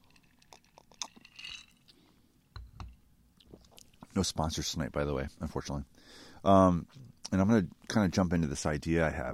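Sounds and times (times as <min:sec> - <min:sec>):
person sipping Scotch whisky with a slurping draw: 0:00.0 - 0:02.2
speech: 0:04.2 - 0:09.3.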